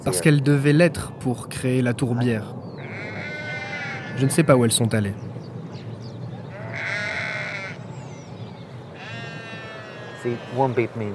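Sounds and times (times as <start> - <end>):
speech: 0.1 - 3.2, 4.2 - 5.3, 10.2 - 11.1
sheep bleating beside a van: 2.8 - 4.3, 6.5 - 7.8, 8.9 - 11.1.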